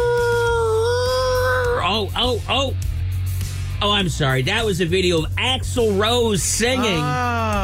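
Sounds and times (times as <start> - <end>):
voice imitating a puppy howling: 0.0 - 1.9, 6.6 - 7.6
speech: 2.0 - 2.9, 3.8 - 7.6.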